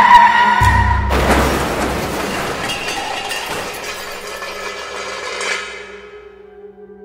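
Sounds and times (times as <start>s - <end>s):
car braking and crashing into a sheep in a foggy tunnel: 0.6s - 6.1s
glass shattering in a car crash: 0.6s - 6.2s
debris clattering after a car crash: 0.6s - 6.4s.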